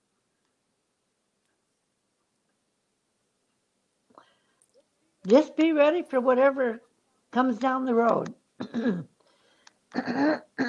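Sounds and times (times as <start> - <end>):
speech: 5.2 - 9.1, 9.9 - 10.6
person clearing throat: 8.6 - 9.2, 9.9 - 10.6.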